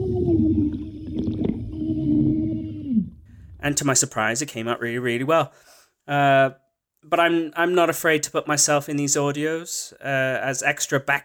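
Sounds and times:
scream recorded underwater in a sink: 0.0s - 3.7s
bubbly gurgles underwater in a sink: 0.0s - 3.8s
speech: 3.6s - 11.2s.

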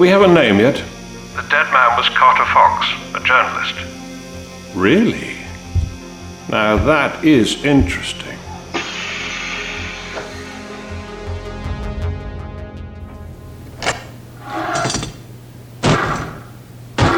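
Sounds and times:
speech: 0.0s - 4.0s, 4.7s - 5.4s, 6.5s - 8.4s
low hum: 0.0s - 8.7s, 9.3s - 17.0s
door banging and rattling: 13.8s - 16.4s.

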